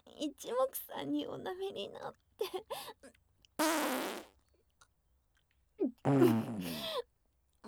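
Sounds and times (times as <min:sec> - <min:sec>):
speech: 0:00.2 - 0:04.3, 0:06.1 - 0:06.9
farts: 0:03.6 - 0:04.3, 0:06.1 - 0:06.8.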